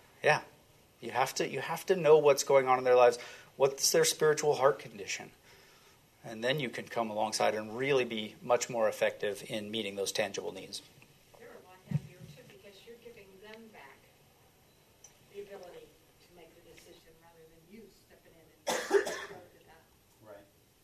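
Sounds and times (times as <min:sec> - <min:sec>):
speech: 0:00.2 - 0:05.4, 0:06.2 - 0:11.0
person coughing: 0:18.7 - 0:19.4.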